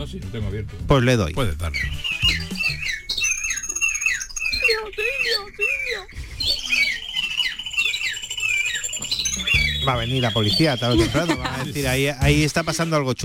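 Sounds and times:
speech: 0.0s - 2.3s, 4.7s - 7.0s, 9.4s - 13.2s
cockatiel squawking loudly: 1.7s - 11.6s
laughter: 10.5s - 12.6s.

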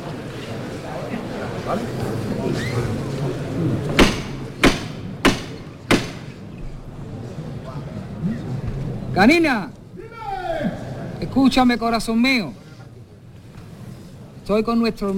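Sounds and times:
constant murmur of a crowd: 0.0s - 11.5s, 12.5s - 14.4s
speech: 1.7s - 4.2s, 9.2s - 9.8s, 11.3s - 12.6s, 14.5s - 15.1s
metallic hammer-knocker strikes signalling a procession float lift: 4.0s - 6.4s.

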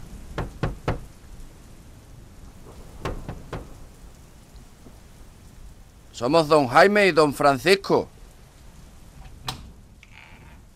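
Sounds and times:
steady hiss: 0.0s - 10.7s
firm knocks on a wide closed door: 0.4s - 1.0s, 3.0s - 3.7s
speech: 6.2s - 8.1s.

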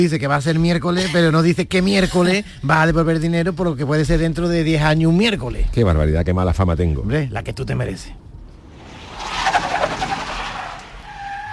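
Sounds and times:
speech: 0.0s - 8.2s
car engine hum: 7.7s - 11.5s
car tires skidding as it pulls up at a house: 8.5s - 11.5s.

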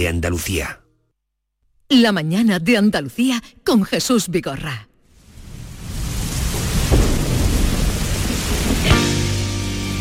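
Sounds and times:
speech: 0.0s - 0.8s, 1.9s - 4.9s
steady rain hissing: 5.1s - 9.9s
low rumble of thunder: 5.3s - 9.1s.

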